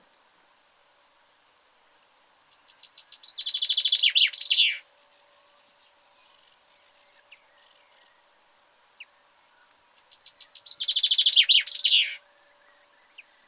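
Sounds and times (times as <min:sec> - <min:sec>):
common chaffinch Fringilla coelebs singing: 0:02.4 - 0:13.4.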